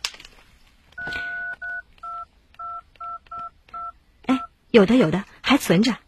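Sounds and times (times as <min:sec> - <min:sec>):
phone keypad button tones: 0:01.0 - 0:04.0
speech: 0:04.7 - 0:06.0.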